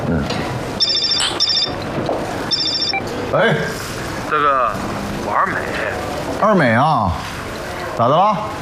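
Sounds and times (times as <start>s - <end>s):
voices and room chatter: 0.0s - 8.6s
telephone ringing with bright trilling rings: 0.8s - 1.9s, 2.5s - 3.1s
speech: 3.3s - 7.4s, 8.0s - 8.6s.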